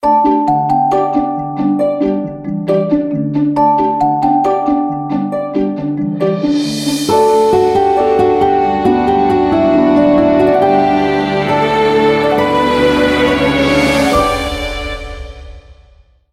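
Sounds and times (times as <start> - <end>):
orchestral phone ringtone: 0.0 - 15.4.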